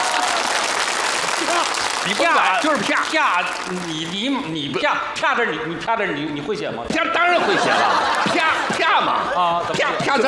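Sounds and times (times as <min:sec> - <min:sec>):
laughter: 0:00.0 - 0:00.6, 0:07.1 - 0:10.2
audience applause: 0:00.0 - 0:04.3
speech: 0:02.0 - 0:10.2.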